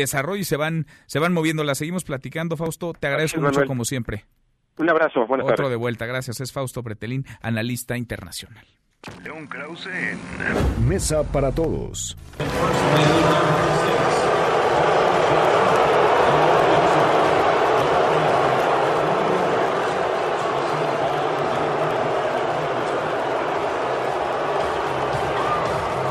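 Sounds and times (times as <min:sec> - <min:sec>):
speech: 0:00.0 - 0:14.3
huge stadium crowd booing at a baseball game: 0:12.4 - 0:26.0.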